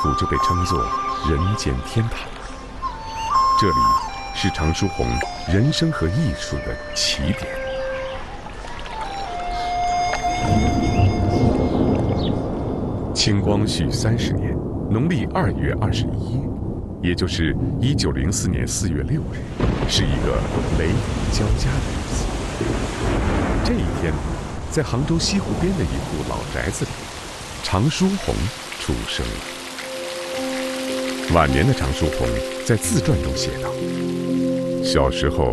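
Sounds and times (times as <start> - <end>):
speech: 0.0 - 2.4, 3.6 - 7.6, 13.2 - 27.0, 27.7 - 29.5, 31.3 - 34.2, 34.8 - 35.5
steady rain hissing in a thunderstorm: 0.0 - 35.5
deep loud thunder rumbling: 9.8 - 34.8.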